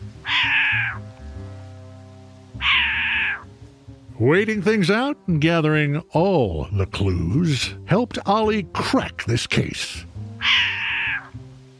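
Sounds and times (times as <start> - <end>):
short-eared owl cat-like mewing call: 0.2 - 1.1, 2.6 - 3.5, 10.4 - 11.4
speech: 4.2 - 10.1.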